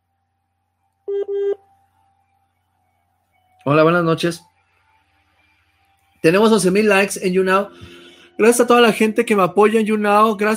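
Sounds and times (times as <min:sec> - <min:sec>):
electronic telephone tones while answering a late-night phone call: 0:01.1 - 0:01.6
speech: 0:03.6 - 0:04.5, 0:06.2 - 0:10.5.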